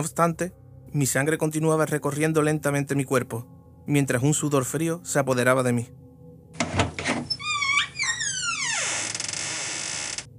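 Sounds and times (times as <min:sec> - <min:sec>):
speech: 0:00.0 - 0:06.6
door hinge creaking as door swings open: 0:06.6 - 0:10.3.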